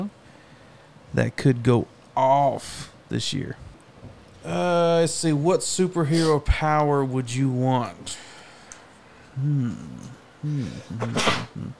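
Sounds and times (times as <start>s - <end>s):
speech: 1.1s - 3.7s, 4.4s - 8.3s, 9.4s - 11.7s
person sneezing: 10.5s - 11.7s.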